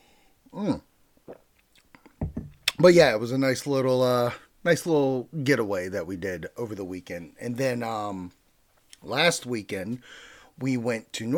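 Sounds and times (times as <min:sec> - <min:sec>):
speech: 0:00.6 - 0:00.8, 0:02.8 - 0:08.4, 0:09.0 - 0:11.3
sipping a drink: 0:01.2 - 0:02.8.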